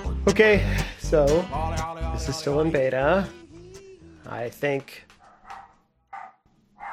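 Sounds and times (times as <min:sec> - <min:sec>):
speech: 0:00.3 - 0:03.4, 0:04.3 - 0:05.1
dog barking: 0:05.2 - 0:06.9.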